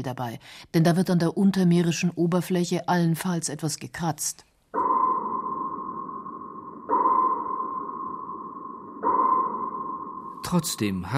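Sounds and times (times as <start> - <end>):
speech: 0.0 - 4.5, 10.5 - 11.1
echo sounder sonar pings: 4.7 - 11.1.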